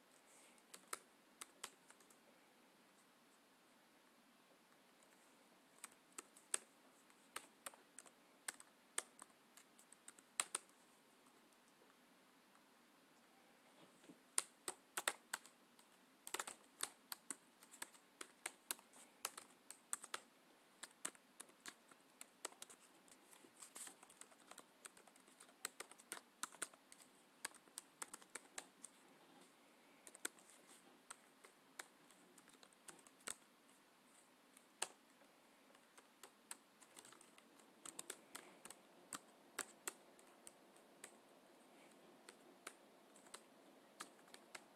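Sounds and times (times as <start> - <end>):
quiet steady hush: 0.0 - 44.7
typing on a computer keyboard: 5.8 - 10.8, 14.4 - 29.0, 30.0 - 33.5, 35.7 - 44.7.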